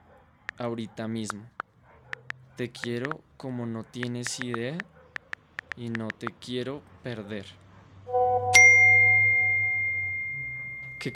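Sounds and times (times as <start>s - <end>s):
speech: 0.6s - 1.6s, 2.6s - 4.9s, 5.8s - 7.6s
bright phone message notification ding: 8.1s - 11.1s.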